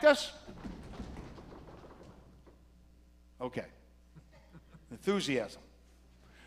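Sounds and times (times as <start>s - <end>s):
speech: 0.0s - 0.6s, 3.4s - 3.8s, 4.9s - 5.7s
audience stomping their feet in a large room: 0.4s - 2.6s
laughter: 4.1s - 5.1s.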